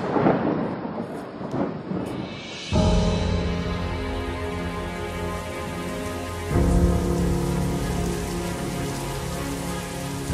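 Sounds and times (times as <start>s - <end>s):
steady rain pattering on a surface: 0.0s - 10.3s
sustained low synth chords: 2.7s - 10.3s.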